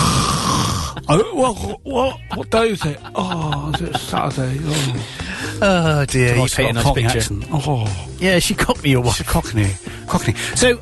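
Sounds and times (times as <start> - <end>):
person imitating a woman snoring: 0.0 - 1.1
laughter: 0.9 - 5.6
speech: 1.1 - 10.8.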